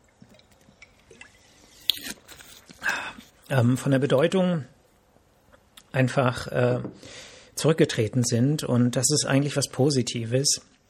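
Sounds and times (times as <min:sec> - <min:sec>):
person sipping a drink: 0:00.1 - 0:03.5
speech: 0:03.5 - 0:04.8, 0:06.0 - 0:10.8.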